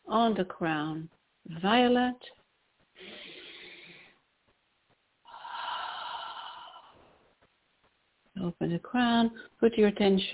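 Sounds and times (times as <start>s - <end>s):
speech: 0.1s - 2.4s, 8.4s - 10.3s
deep breaths during a chakra healing session: 2.9s - 4.2s, 5.2s - 7.5s.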